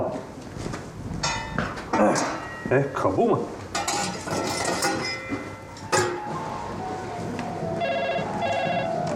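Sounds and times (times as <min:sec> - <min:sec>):
busy noisy room background: 0:00.0 - 0:09.1
speech: 0:02.0 - 0:03.6
telephone ringing with short trilling electronic bursts: 0:07.8 - 0:09.1.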